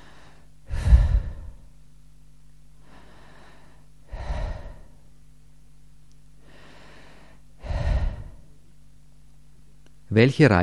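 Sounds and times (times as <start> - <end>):
person breathing in sleep: 0.0 - 1.8, 2.8 - 5.1, 6.4 - 8.6.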